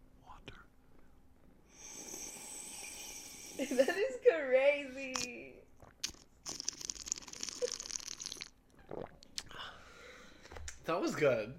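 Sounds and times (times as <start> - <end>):
person sipping water against the microphone: 1.8 - 3.6, 5.7 - 9.6
speech: 3.6 - 5.4, 10.9 - 11.5.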